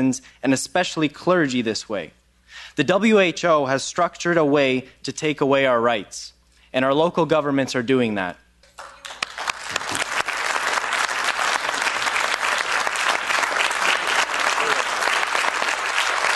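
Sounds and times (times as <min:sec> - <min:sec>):
speech: 0:00.0 - 0:08.4
large crowd applauding in a standing ovation in the EU Parliament: 0:08.8 - 0:16.3.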